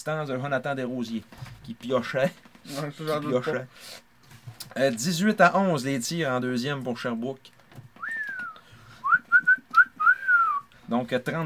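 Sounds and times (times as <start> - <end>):
speech: 0.0 - 4.1, 4.7 - 7.6, 10.9 - 11.4
person whistling a short tune: 8.0 - 10.7.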